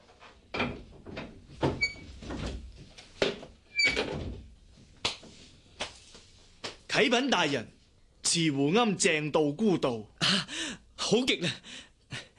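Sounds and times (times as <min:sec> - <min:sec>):
door opening with wooden bumps and clatters: 0:00.5 - 0:04.5
door creaking: 0:00.6 - 0:02.6, 0:03.7 - 0:04.5
speech: 0:07.0 - 0:11.9.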